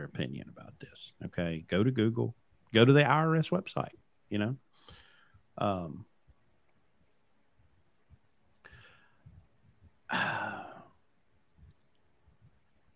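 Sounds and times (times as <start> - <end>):
speech: 0.1 - 4.7, 5.6 - 6.1
person yawning: 10.1 - 10.9.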